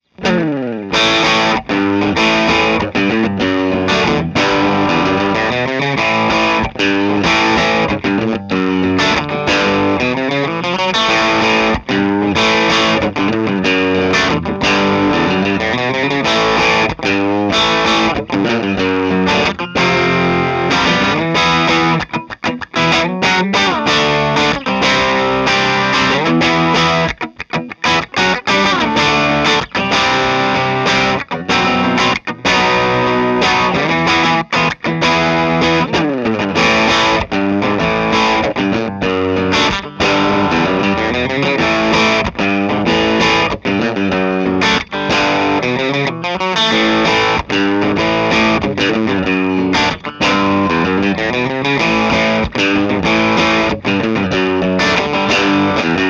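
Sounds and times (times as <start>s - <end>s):
electric guitar bridge pickup with light dirt: 0.0s - 56.0s.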